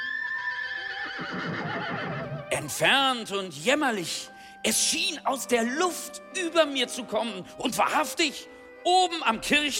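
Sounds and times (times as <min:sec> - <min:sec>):
horse neighing in a long wavering whinny: 0:00.0 - 0:02.6
speech: 0:01.2 - 0:09.7.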